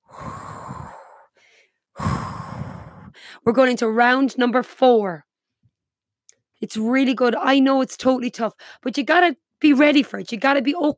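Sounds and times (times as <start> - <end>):
heavy breathing of someone recovering after a cardio workout: 0.0 - 3.4
speech: 3.4 - 5.3, 6.6 - 10.9.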